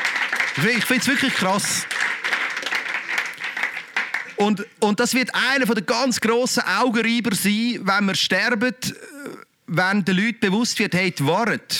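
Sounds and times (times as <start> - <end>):
audience applause: 0.0 - 4.7
speech: 0.6 - 2.1, 4.4 - 11.7.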